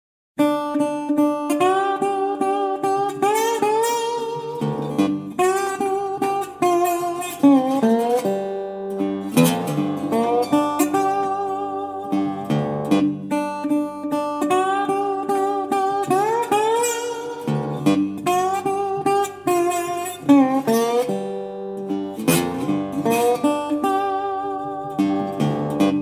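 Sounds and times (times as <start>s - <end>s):
blues music: 0.4s - 26.0s.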